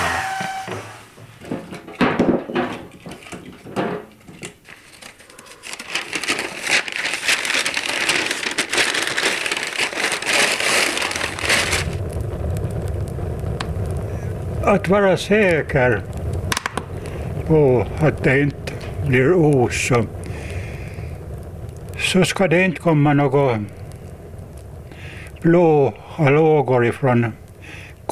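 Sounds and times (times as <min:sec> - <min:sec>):
wood fire crackling in a wood stove: 0:00.0 - 0:28.1
speech: 0:14.7 - 0:16.1, 0:17.5 - 0:20.2, 0:22.1 - 0:23.8, 0:25.4 - 0:27.4.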